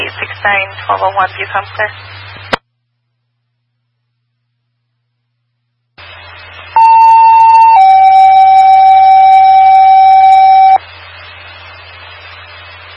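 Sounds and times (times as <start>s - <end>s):
radio static hiss: 0.0s - 2.6s, 6.0s - 12.9s
speech: 0.4s - 2.2s
two-tone all-call paging system alert tone: 6.8s - 10.8s.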